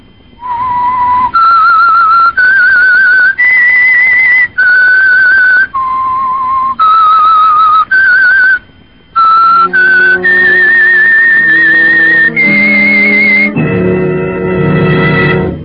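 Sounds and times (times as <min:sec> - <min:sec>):
lone whistled signal melody: 0:00.4 - 0:15.6
orchestra playing: 0:09.5 - 0:15.6.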